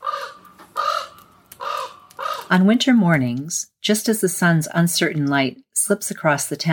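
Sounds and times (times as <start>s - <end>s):
raven calling in harsh hoarse croaks: 0.0s - 2.7s
speech: 2.5s - 6.7s.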